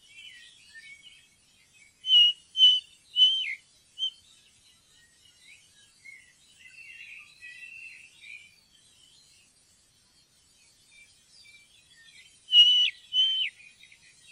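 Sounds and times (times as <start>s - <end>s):
ring ouzel whistled calls: 2.1s - 4.2s, 12.5s - 13.6s.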